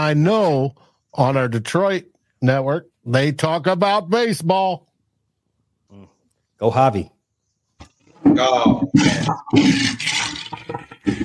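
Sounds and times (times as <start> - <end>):
speech: 0.0 - 4.9, 5.9 - 7.2, 8.2 - 11.2
toilet flushing: 8.8 - 11.2.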